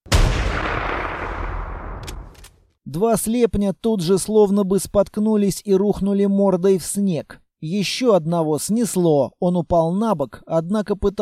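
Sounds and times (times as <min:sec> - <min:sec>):
rifle with an optical scope firing in a snowy setting: 0:00.1 - 0:02.5
speech: 0:02.9 - 0:11.2.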